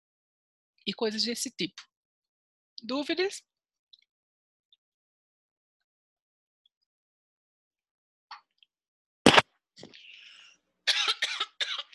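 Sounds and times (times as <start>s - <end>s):
speech: 0.8s - 1.9s, 2.8s - 3.5s
short raspy breath: 9.9s - 10.6s
person coughing: 10.9s - 11.9s.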